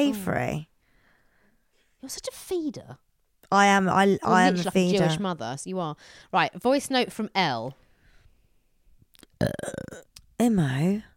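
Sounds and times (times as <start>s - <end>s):
speech: 0.0s - 0.7s, 2.0s - 7.8s, 9.4s - 11.1s
faint breath: 0.8s - 2.0s, 6.0s - 6.3s, 7.8s - 8.6s
forced fake burp: 9.4s - 10.2s.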